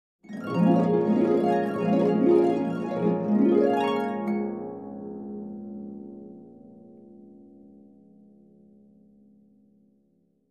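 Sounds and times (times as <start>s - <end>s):
dreamy harp sound effect: 0.3s - 6.7s.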